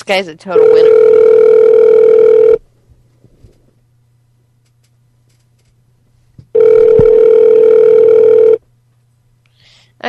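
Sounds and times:
speech: 0:00.1 - 0:01.4
ringback tone from an outgoing phone call: 0:00.6 - 0:02.6, 0:06.6 - 0:08.6.

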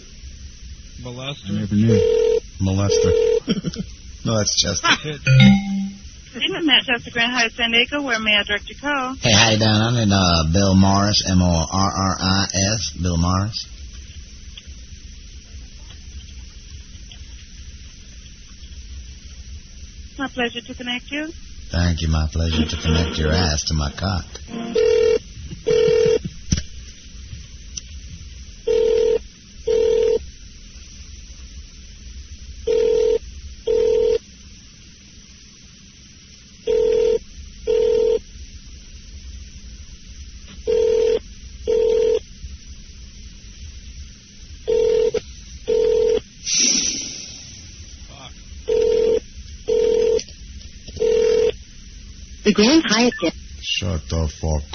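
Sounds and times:
speech: 0:01.0 - 0:05.6, 0:06.4 - 0:13.7, 0:20.4 - 0:25.0, 0:52.6 - 0:54.7
telephone ring-back tone heard over the line: 0:01.9 - 0:03.4, 0:05.3 - 0:06.0, 0:24.5 - 0:26.2, 0:28.7 - 0:30.2, 0:32.7 - 0:34.2, 0:36.7 - 0:38.2, 0:40.7 - 0:42.2, 0:44.7 - 0:46.2, 0:48.7 - 0:50.2, 0:51.0 - 0:51.5.

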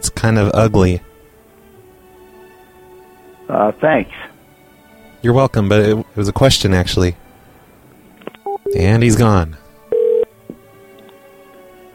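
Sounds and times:
speech: 0:00.0 - 0:01.1, 0:03.5 - 0:04.3, 0:05.2 - 0:07.2, 0:08.7 - 0:09.6
steady telephone tone: 0:09.9 - 0:10.3
click: 0:10.5 - 0:11.2.

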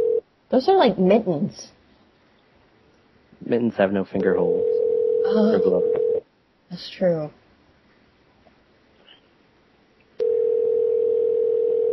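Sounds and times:
electronic telephone ringing tone while waiting for answer: 0:00.0 - 0:00.2, 0:04.5 - 0:06.2, 0:10.2 - 0:11.9
speech: 0:00.5 - 0:01.8, 0:03.5 - 0:06.0, 0:06.7 - 0:07.4.

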